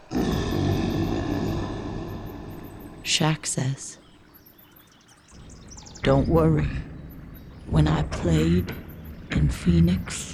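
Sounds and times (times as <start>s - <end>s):
massive grizzly bear roaring: 0.0s - 3.2s
speech: 3.1s - 4.0s, 6.0s - 6.9s, 7.7s - 10.3s.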